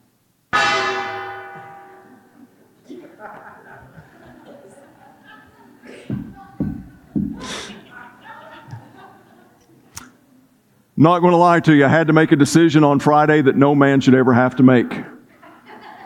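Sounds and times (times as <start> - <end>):
gong being struck: 0.6 - 2.3
people chuckling: 2.1 - 9.9, 15.1 - 16.0
murmur of voices: 2.1 - 11.0
speech: 3.2 - 3.8, 11.0 - 15.2.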